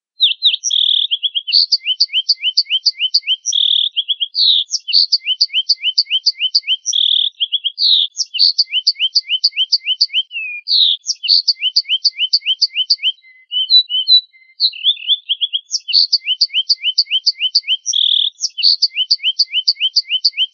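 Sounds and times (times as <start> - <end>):
family of canaries singing: 0.2 - 20.5.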